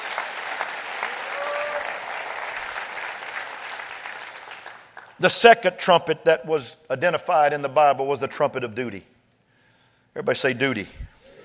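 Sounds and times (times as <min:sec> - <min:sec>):
audience clapping in dense applause: 0:00.0 - 0:05.2
speech: 0:05.2 - 0:09.1, 0:10.1 - 0:11.1.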